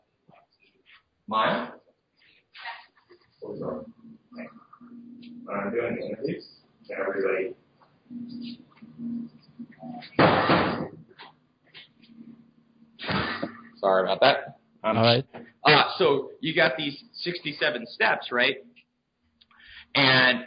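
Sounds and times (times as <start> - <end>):
speech: 1.3 - 1.8, 5.5 - 10.9, 13.8 - 18.7, 19.9 - 20.4
door shutting with a solid thud: 10.2 - 11.0.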